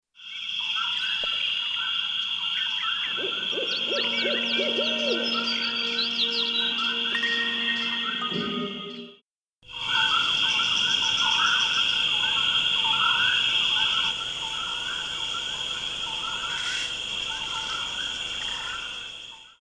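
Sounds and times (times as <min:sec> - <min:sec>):
jungle ambience: 0:00.2 - 0:09.1, 0:09.7 - 0:19.5.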